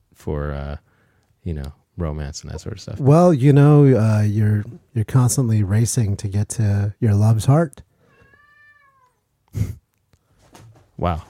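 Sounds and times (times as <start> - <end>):
speech: 0.2 - 7.9, 9.5 - 9.8, 11.0 - 11.2
cat meowing: 8.1 - 9.2.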